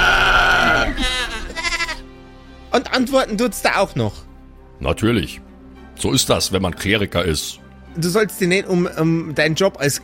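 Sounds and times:
goat bleating: 0.6 - 2.1
speech: 2.8 - 10.0.

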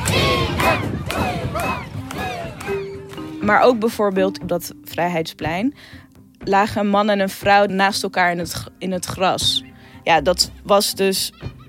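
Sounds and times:
crowd of teenagers on a swinging pirate-ship ride shouting in unison: 0.0 - 3.2
speech: 3.5 - 11.6.

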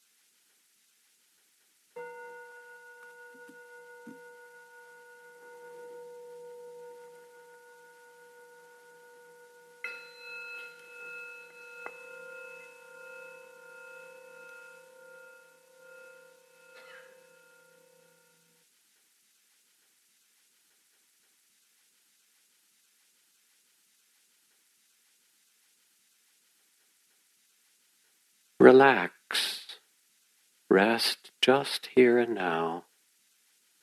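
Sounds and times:
bells ringing: 2.0 - 18.5
speech: 28.6 - 29.6, 30.7 - 32.9.

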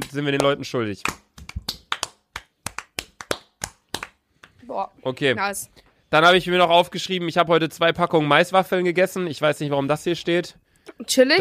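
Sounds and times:
hands clapping: 0.0 - 4.6
speech: 0.1 - 1.3, 4.7 - 11.3.

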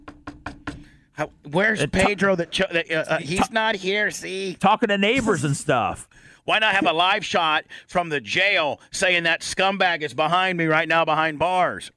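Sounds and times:
knocking on a door: 0.0 - 0.9
speech: 1.2 - 11.9.

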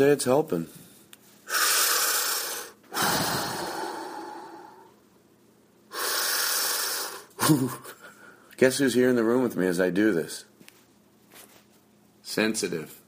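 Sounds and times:
speech: 0.0 - 0.8, 7.5 - 7.9, 8.6 - 10.5, 12.4 - 13.0
slow deep breathing with inhales and exhales: 0.7 - 5.0, 5.9 - 7.4.

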